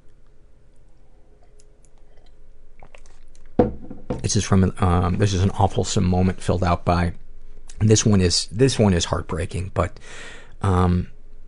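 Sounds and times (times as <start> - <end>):
low hum: 0.0 - 11.4
person sipping tea: 0.8 - 3.4
small wet mouth clicks: 1.4 - 3.5
speech: 3.6 - 7.2, 7.8 - 11.2.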